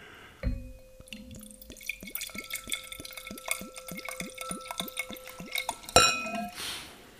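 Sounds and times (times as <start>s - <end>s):
apple juice pouring into a glass: 0.4s - 6.6s
bottle clinking against glass rim: 0.4s - 6.6s.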